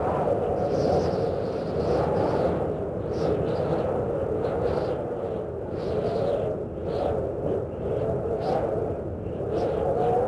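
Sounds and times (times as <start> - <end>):
smooth wind: 0.0 - 10.2.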